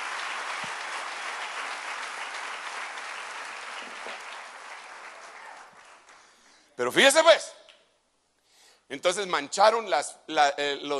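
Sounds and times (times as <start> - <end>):
crowd applauding: 0.0 - 6.4
speech: 6.8 - 7.6, 8.9 - 10.9.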